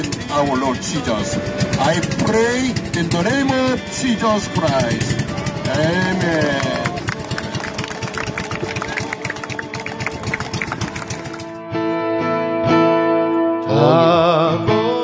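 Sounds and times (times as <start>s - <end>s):
speech: 0.0s - 6.9s, 13.8s - 14.1s
boat engine chugging as the boat heads out to sea: 0.0s - 11.6s
sustained tonal music: 0.0s - 14.9s.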